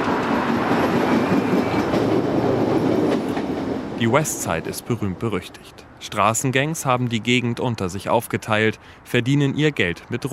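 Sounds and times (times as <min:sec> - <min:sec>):
subway train rumbling along the rails: 0:00.0 - 0:07.5
thin high squeal of subway train: 0:01.1 - 0:02.0
speech: 0:04.0 - 0:10.3.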